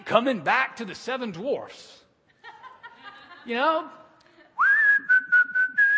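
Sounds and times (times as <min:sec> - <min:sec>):
speech: 0:00.1 - 0:02.0, 0:03.4 - 0:04.0
laughter: 0:02.3 - 0:03.6
person whistling a short bright tune: 0:04.6 - 0:05.9.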